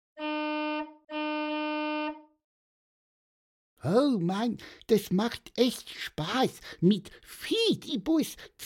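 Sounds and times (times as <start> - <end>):
bus horn blasts as the bus sets off: 0.2 - 2.4
speech: 3.8 - 8.6.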